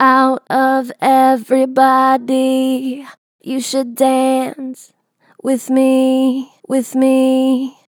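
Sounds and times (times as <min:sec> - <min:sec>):
vocals with strong natural vibrato: 0:00.0 - 0:07.9.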